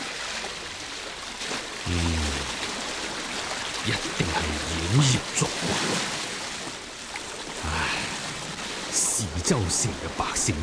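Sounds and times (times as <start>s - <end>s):
rushing water of a swollen shallow river outside a city: 0.0s - 10.6s
speech: 3.9s - 4.2s, 4.9s - 6.2s, 9.5s - 10.6s.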